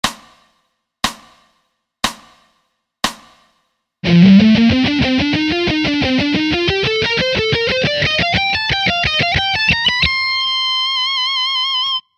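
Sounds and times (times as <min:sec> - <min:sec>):
slow alternate picking guitar: 0:04.0 - 0:12.0.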